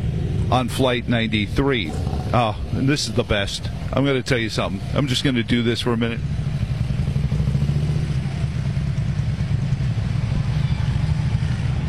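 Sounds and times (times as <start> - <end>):
group of motorcycles idling and revving on arrival in Shanksville: 0.0 - 11.8
speech: 0.5 - 6.4.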